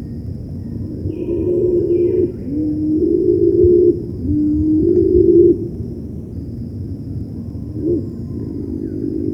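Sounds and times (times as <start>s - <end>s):
Cinnamon-bellied imperial pigeon deep hollow coos: 0.8s - 5.8s, 7.7s - 9.3s.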